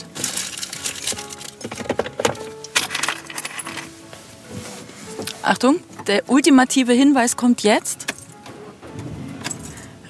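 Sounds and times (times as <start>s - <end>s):
keys jangling inside a car: 0.1s - 1.8s, 2.6s - 3.9s, 9.4s - 9.8s
speech: 5.5s - 8.0s.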